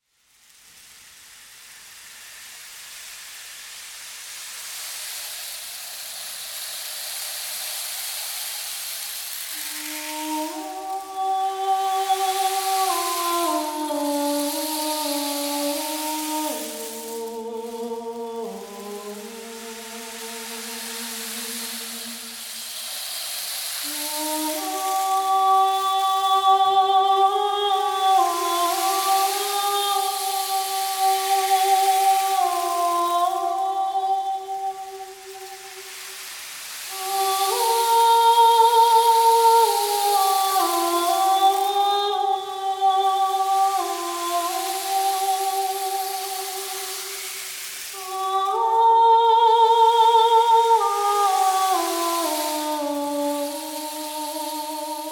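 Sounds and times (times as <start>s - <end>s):
rain stick: 0.0s - 55.1s
voice: 9.2s - 22.6s, 23.8s - 35.9s, 36.9s - 47.3s, 48.0s - 55.1s.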